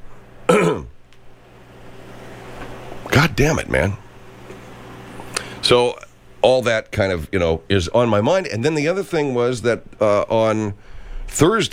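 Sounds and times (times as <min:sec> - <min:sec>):
gravelly throat clearing: 0:00.5 - 0:01.0
speech: 0:03.4 - 0:04.0, 0:05.7 - 0:11.7.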